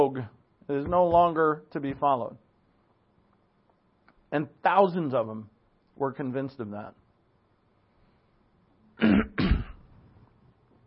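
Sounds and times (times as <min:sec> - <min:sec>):
speech: 0:00.0 - 0:02.4, 0:04.3 - 0:07.0
person clearing throat: 0:09.0 - 0:09.9.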